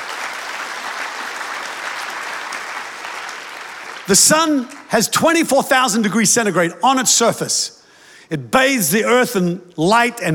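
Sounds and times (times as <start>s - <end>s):
congregation applauding together: 0.0s - 5.2s
speech: 4.1s - 10.3s.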